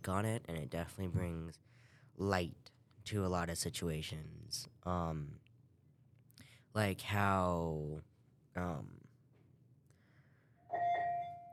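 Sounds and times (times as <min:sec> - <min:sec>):
speech: 0:00.0 - 0:05.5, 0:06.8 - 0:09.0
doorbell chiming: 0:10.7 - 0:11.5.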